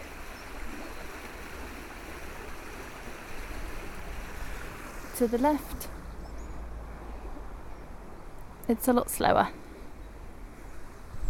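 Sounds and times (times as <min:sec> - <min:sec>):
churned-up turbulent river water flowing: 0:00.0 - 0:06.1
speech: 0:05.2 - 0:06.0, 0:08.7 - 0:09.6.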